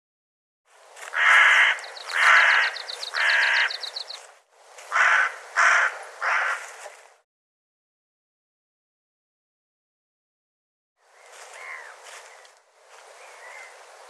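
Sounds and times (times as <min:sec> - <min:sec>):
harsh raspy bird calls: 0:01.1 - 0:04.2, 0:04.9 - 0:06.7, 0:11.5 - 0:12.0.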